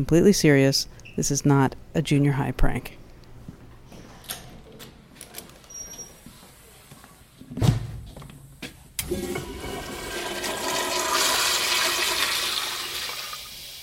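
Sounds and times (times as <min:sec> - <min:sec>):
speech: 0:00.0 - 0:03.0
toilet flush water rushing and swirling: 0:09.0 - 0:13.8.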